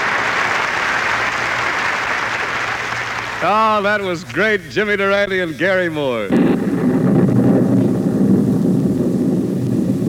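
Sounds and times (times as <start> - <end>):
rain sound effect: 0.0 - 3.4, 6.6 - 10.0
speech: 3.4 - 6.7.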